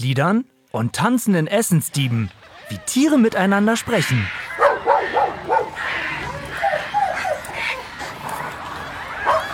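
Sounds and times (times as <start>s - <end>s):
speech: 0.0s - 4.4s
dog barking in short yappy bursts: 4.6s - 7.8s, 9.2s - 9.5s.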